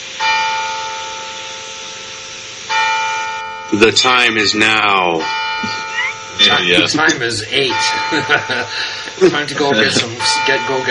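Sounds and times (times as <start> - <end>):
large clock tower bell striking the hour at eight o'clock: 0.0 - 10.8
speech: 3.7 - 5.8, 6.4 - 10.8
laughter: 5.6 - 10.2.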